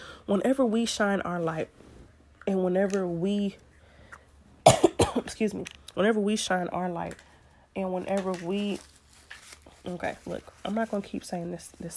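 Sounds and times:
speech: 0.3s - 3.7s, 5.3s - 8.9s, 9.8s - 11.9s
sharp coughs: 4.6s - 5.3s.

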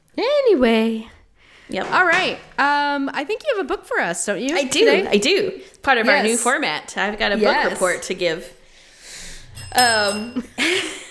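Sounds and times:
speech: 0.6s - 8.6s, 9.6s - 11.0s
bright bicycle-style bell ringing: 9.4s - 11.0s.

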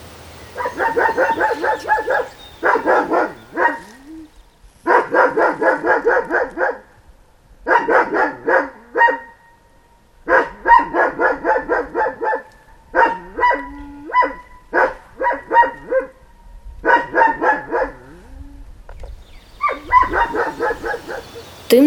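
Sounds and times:
farm dog barking: 0.5s - 4.0s, 4.8s - 6.9s, 7.7s - 9.4s, 10.3s - 16.2s, 16.8s - 18.2s, 19.6s - 21.4s.

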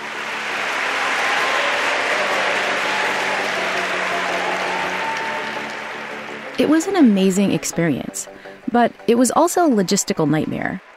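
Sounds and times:
large audience of students applauding in a university concert hall: 0.0s - 7.8s
speech: 6.6s - 10.9s.

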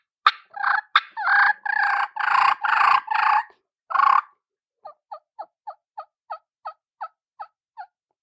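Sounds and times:
reed game call blown by mouth yelping: 0.4s - 4.4s.

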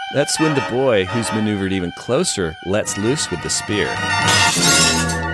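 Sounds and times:
speech: 0.1s - 5.1s
glass shattering sound effect: 4.3s - 5.2s.

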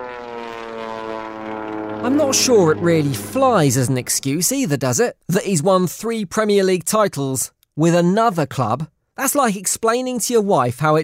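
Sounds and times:
propeller plane flying overhead: 0.0s - 4.7s
speech: 2.0s - 11.0s.

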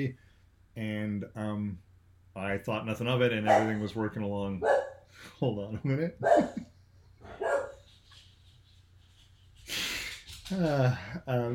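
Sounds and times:
speech: 0.0s - 0.2s, 0.8s - 6.7s, 10.5s - 11.5s
dogs barking in an office: 3.4s - 3.9s, 4.6s - 5.0s, 6.2s - 6.6s, 7.2s - 7.8s
dog yelp in an office: 3.5s - 3.8s, 4.6s - 5.0s, 7.3s - 7.8s.

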